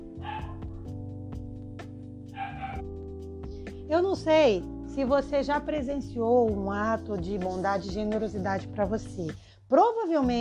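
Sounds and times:
dog barking: 0.2 - 0.7, 2.3 - 2.8
speech: 3.9 - 10.3.

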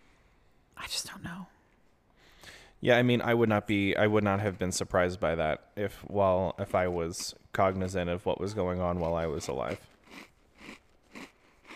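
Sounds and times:
speech: 0.8 - 1.6, 2.8 - 10.3
crunchy chewing of cookies: 6.6 - 11.7.

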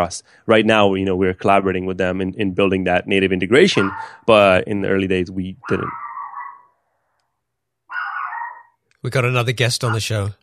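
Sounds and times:
speech: 0.0 - 6.0, 9.0 - 10.4
dog barking: 3.7 - 4.2, 5.6 - 6.8, 7.9 - 8.8, 9.8 - 10.2.

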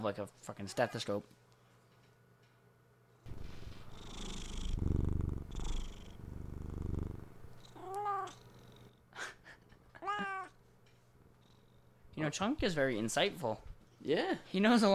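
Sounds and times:
speech: 0.0 - 1.4, 12.2 - 14.9
cat purring: 3.3 - 9.0, 11.3 - 12.0
cat meowing: 7.8 - 8.4, 10.0 - 10.6.

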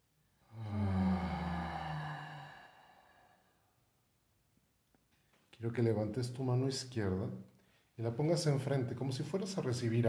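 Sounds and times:
deep inhaling breath during a guided breathing exercise: 0.4 - 3.8
speech: 5.6 - 10.0.

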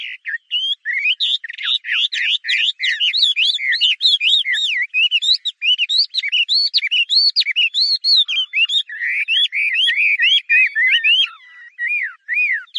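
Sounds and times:
Chinese hwamei singing whistled notes: 0.0 - 12.7.

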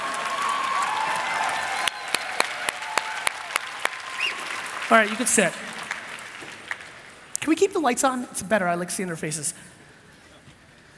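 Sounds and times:
crowd applauding: 0.0 - 7.4
speech: 4.9 - 5.8, 7.4 - 9.8.

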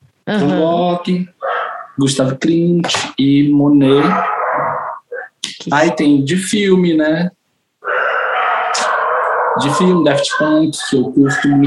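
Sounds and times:
speech: 0.3 - 4.4, 5.6 - 7.4, 9.6 - 11.6
neighbor's dog barking and howling: 1.4 - 2.0, 3.8 - 5.2, 7.8 - 11.6.

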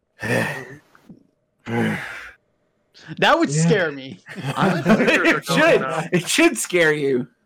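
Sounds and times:
speech: 1.7 - 2.1, 3.1 - 7.4
heavy labored breathing: 1.7 - 2.4
laughter: 4.2 - 6.5.

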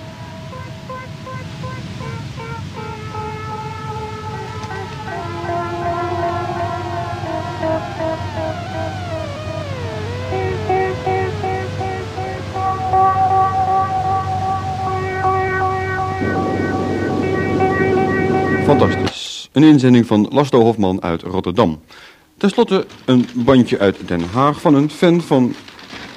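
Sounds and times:
howling cold storm wind on an open heath: 0.0 - 19.1
speech: 18.8 - 19.0, 19.6 - 25.7.

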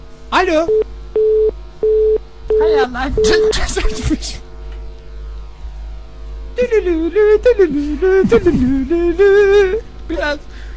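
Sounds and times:
speech: 0.3 - 0.9, 2.6 - 4.4, 6.6 - 10.6
telephone line tone pulsing in mid-pitch beeps after answering: 0.7 - 3.5.

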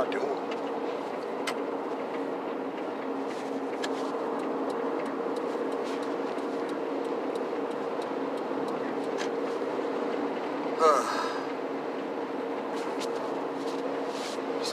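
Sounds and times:
car road and engine noise in heavy traffic: 0.0 - 14.7
faint ticks and clicks: 3.8 - 9.4.

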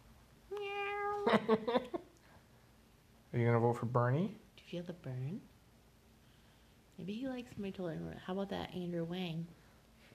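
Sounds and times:
cat meowing: 0.5 - 1.3
speech: 1.3 - 2.0, 3.4 - 5.5, 7.0 - 10.1.

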